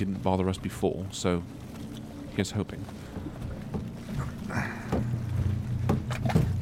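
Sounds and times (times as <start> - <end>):
speech: 0.0 - 1.8, 2.4 - 3.4
paddles dipping and pulling through water beside a small boat: 0.0 - 6.6
low rumble: 3.0 - 6.6.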